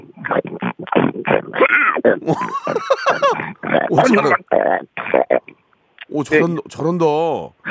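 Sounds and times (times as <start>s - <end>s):
person imitating a pig grunting and snorting while eating: 0.0s - 5.5s
speech: 2.0s - 4.9s, 6.2s - 7.6s
laughter: 2.3s - 4.4s.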